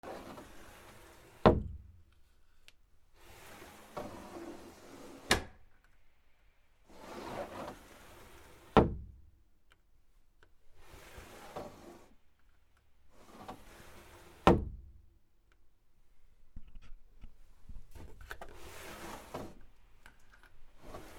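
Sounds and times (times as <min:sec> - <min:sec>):
sliding door swishing: 0:00.0 - 0:01.6, 0:03.2 - 0:05.6, 0:06.9 - 0:08.9, 0:10.8 - 0:12.2, 0:13.1 - 0:14.6, 0:18.0 - 0:19.7, 0:20.7 - 0:21.1.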